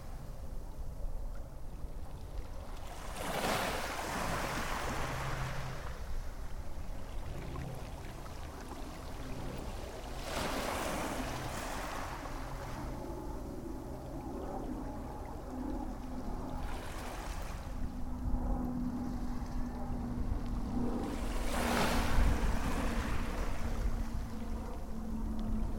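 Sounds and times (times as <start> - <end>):
faint engine-like drone, perhaps a boat: 0.0 - 25.7
waves breaking at the water's edge on a beach: 2.0 - 25.7
steady low rumble: 5.4 - 25.7.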